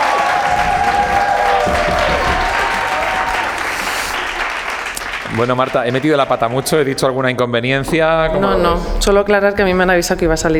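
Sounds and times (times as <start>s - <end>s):
scattered audience cheers: 0.0s - 7.1s
audience applause: 0.0s - 7.7s
speech: 5.4s - 10.5s.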